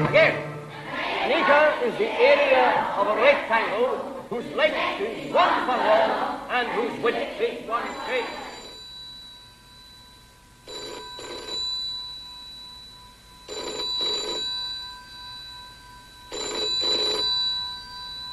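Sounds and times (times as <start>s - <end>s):
faint hum: 0.1s - 18.3s
speech: 1.8s - 8.4s
telephone ringing with bright electric trill: 7.7s - 18.3s.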